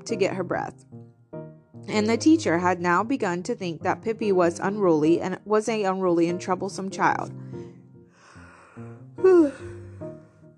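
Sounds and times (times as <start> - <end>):
speech: 0.0 - 1.0, 1.8 - 7.4
person yawning: 8.3 - 10.0.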